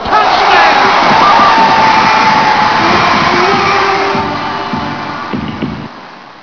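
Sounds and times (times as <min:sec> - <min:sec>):
crowd cheering: 0:00.0 - 0:06.4.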